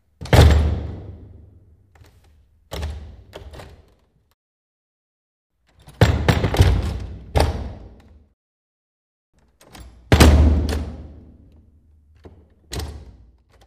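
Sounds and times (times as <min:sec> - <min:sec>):
wooden door slamming shut: 0:00.2 - 0:01.4, 0:05.9 - 0:08.0, 0:10.0 - 0:11.2.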